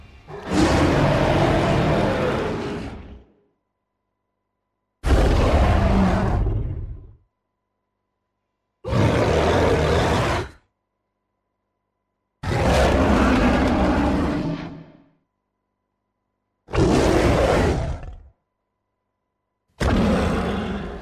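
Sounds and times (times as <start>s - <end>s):
evolved ape character roaring: 0.3s - 3.3s, 5.0s - 7.1s, 8.9s - 10.6s, 12.4s - 14.9s, 16.7s - 18.3s, 19.8s - 20.9s.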